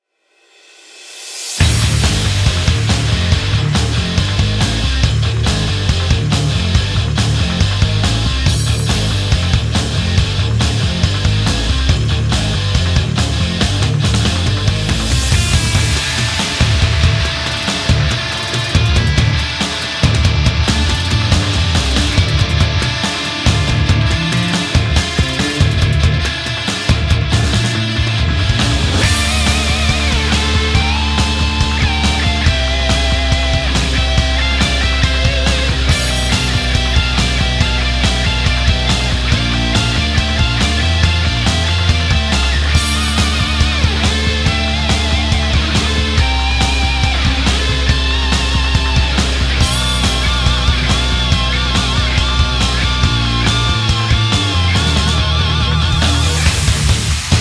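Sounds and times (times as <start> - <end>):
rock background music: 1.1 - 57.3.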